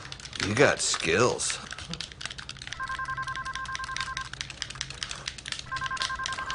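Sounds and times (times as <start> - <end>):
speech: 0.4 - 2.2
telephone ringing with electronic two-tone trill: 2.8 - 4.4, 5.6 - 6.5.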